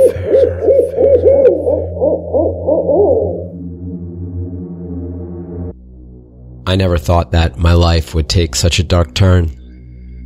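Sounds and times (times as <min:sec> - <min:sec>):
owl hooting: 0:00.0 - 0:04.0
low steady drone: 0:00.0 - 0:10.2
sustained tonal hum: 0:00.0 - 0:10.2
speech: 0:06.7 - 0:09.6.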